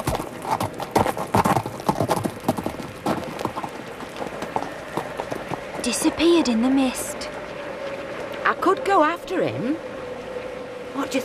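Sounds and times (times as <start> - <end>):
horse hooves clip-clopping: 0.0 - 8.4
speech: 5.8 - 7.3, 8.5 - 9.9, 11.0 - 11.2.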